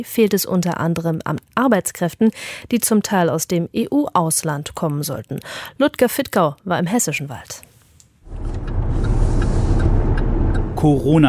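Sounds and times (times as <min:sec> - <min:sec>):
speech: 0:00.0 - 0:07.7, 0:10.8 - 0:11.2
car driving along a road in northern Hesse near Kassel: 0:08.2 - 0:11.2.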